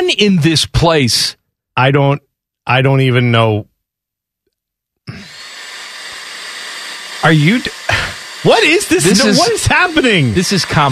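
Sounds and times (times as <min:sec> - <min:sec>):
speech: 0:00.0 - 0:03.7, 0:05.1 - 0:05.4, 0:07.2 - 0:10.9
hair dryer running: 0:05.1 - 0:10.9.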